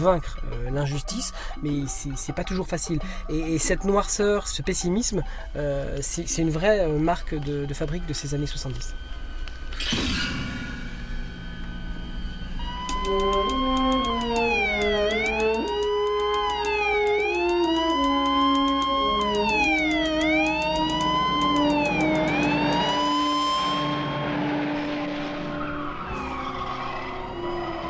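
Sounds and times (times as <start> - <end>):
speech: 0.0 - 9.1, 13.1 - 13.8
police sirens wailing in a film car chase: 0.0 - 9.8, 10.7 - 27.8
car engine noise in a film car chase: 8.9 - 27.8.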